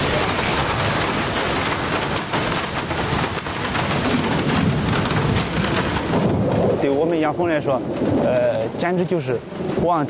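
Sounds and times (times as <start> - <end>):
heavy rain pouring down: 0.0 - 10.0
low rumble of thunder: 0.0 - 10.0
speech: 7.2 - 10.0.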